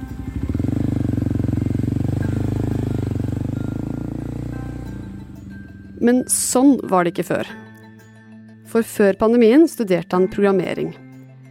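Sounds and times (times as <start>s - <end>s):
motorcycle engine idling: 0.0s - 6.0s
speech: 6.0s - 7.6s, 8.7s - 11.0s.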